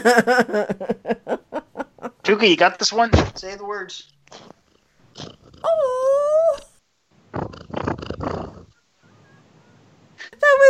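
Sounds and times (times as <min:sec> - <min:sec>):
speech: 0:00.0 - 0:01.1, 0:02.3 - 0:04.4, 0:05.2 - 0:06.6
cat purring: 0:04.2 - 0:05.8, 0:07.2 - 0:09.7
short high falling vocal tone: 0:05.6 - 0:06.7.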